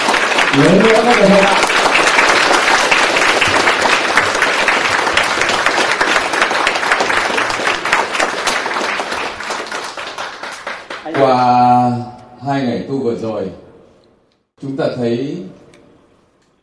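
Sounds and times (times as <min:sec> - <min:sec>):
large audience applauding: 0:00.0 - 0:11.6
speech: 0:00.6 - 0:01.7, 0:12.5 - 0:13.6, 0:14.6 - 0:15.5.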